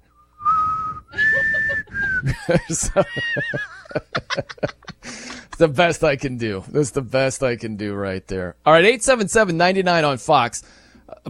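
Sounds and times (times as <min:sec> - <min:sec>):
person whistling shaky off-key notes: 0:00.1 - 0:02.4
snickering laughter and breathy chuckles: 0:01.1 - 0:05.6
speech: 0:02.2 - 0:04.7, 0:05.6 - 0:11.2.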